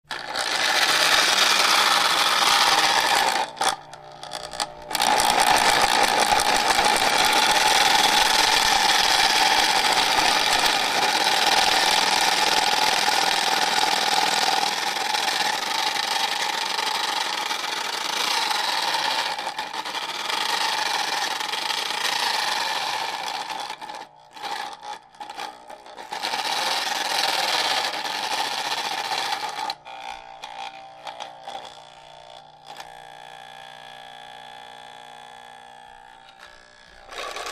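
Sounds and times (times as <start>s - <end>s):
broken hair dryer running at variable speed: 0.1s - 37.4s.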